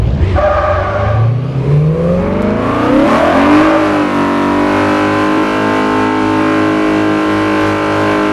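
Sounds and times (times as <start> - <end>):
car engines revving: 0.0 - 8.3.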